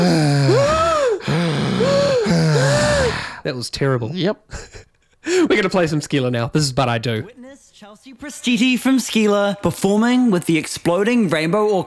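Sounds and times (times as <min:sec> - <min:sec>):
person gasping and groaning in an improvised breathing exercise: 0:00.0 - 0:03.4
speech: 0:03.5 - 0:11.8.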